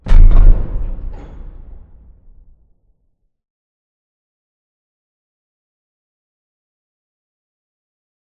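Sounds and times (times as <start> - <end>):
distant metal explosion: 0.0 - 2.8.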